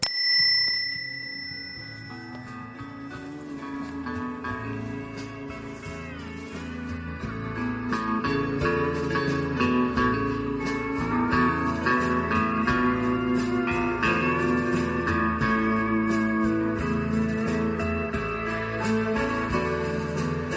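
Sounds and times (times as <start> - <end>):
bright ringing bell rung as a sign-off signal: 0.0 - 3.6
full band playing music with a steady beat: 2.0 - 20.5.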